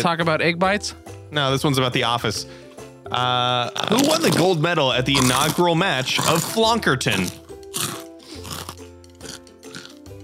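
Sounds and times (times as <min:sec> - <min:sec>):
speech: 0:00.0 - 0:07.9
crunching of crispy nacho cheese chips being chewed: 0:03.7 - 0:10.1
wet mastication: 0:03.7 - 0:10.1.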